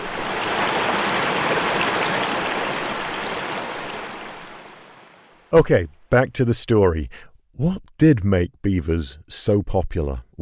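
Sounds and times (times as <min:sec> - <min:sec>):
mountain creek water flowing: 0:00.0 - 0:05.5
speech: 0:05.5 - 0:10.3.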